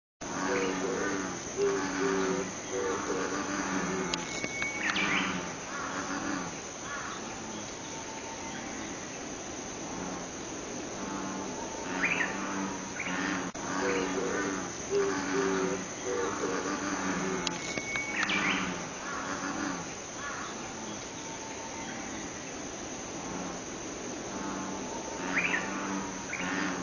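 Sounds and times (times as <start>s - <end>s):
bullfrog croaking: 0.2s - 22.5s, 23.1s - 26.8s.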